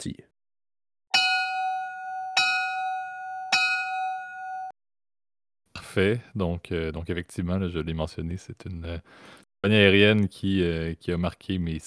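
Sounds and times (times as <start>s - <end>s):
speech: 0.0s - 0.3s, 6.0s - 11.8s
bright bell struck as a jingle: 1.1s - 4.7s.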